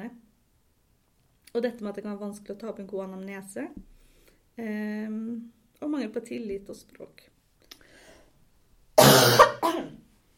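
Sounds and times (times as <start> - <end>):
speech: 1.5 - 4.0, 4.6 - 7.3
harsh explosive coughs: 9.0 - 10.0.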